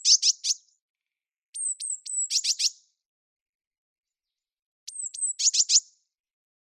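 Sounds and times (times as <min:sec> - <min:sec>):
Eurasian blue tit Cyanistes caeruleus calling: 0:00.0 - 0:00.7, 0:01.6 - 0:02.8, 0:04.9 - 0:06.0.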